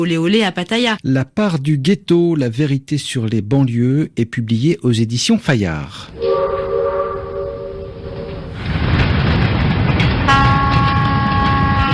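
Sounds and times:
speech: 0:00.0 - 0:06.3
Turkish long-distance express train from Ankara rumbling: 0:05.9 - 0:11.9
Turkish long-distance express train horn: 0:06.2 - 0:08.5, 0:10.3 - 0:11.9.

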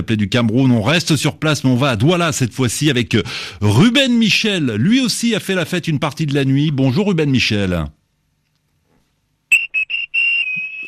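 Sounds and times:
speech: 0:00.0 - 0:08.0
shrill whistle blasts in celebrating streets of Douala Cameroon: 0:09.5 - 0:10.8.

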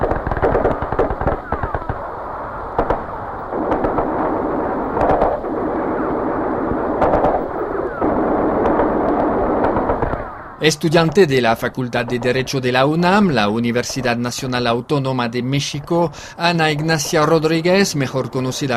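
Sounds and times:
gunshots from snipers and soldiers firing on a crowd of protesters: 0:00.0 - 0:14.2
constant rumbling noisy background: 0:00.0 - 0:18.7
speech: 0:10.6 - 0:18.7.

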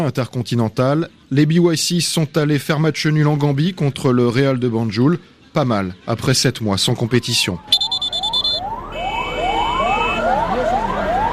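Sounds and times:
speech: 0:00.0 - 0:07.8
ambulance siren wailing in rising sweeps: 0:07.1 - 0:11.3
short high-pitched electronic beeps: 0:07.7 - 0:10.2.

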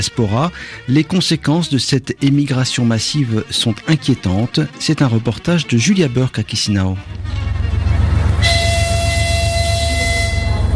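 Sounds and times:
speech: 0:00.0 - 0:07.8
long passenger train of ten green-painted wagons departing: 0:06.9 - 0:10.7.

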